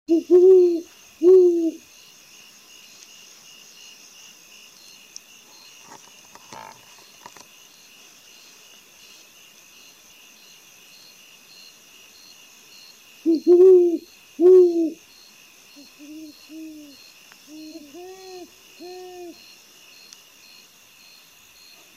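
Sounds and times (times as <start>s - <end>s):
ñacurutú owl voice: 0.1s - 1.8s, 13.3s - 15.0s, 15.8s - 19.4s.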